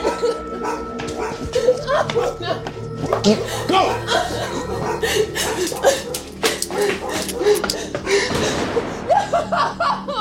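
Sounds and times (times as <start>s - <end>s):
laughter: 0.0s - 0.6s, 1.5s - 10.1s
several dogs barking and yipping: 0.0s - 8.1s
speech: 2.0s - 4.3s
agitated human voices: 3.2s - 7.7s.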